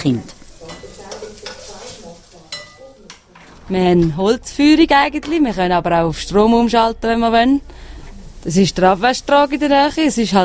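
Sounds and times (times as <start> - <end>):
speech: 0.0 - 0.4, 3.7 - 7.7, 8.4 - 10.4
Fleischkäse meat loaf sizzling in a frying pan: 0.0 - 3.0, 7.9 - 10.4.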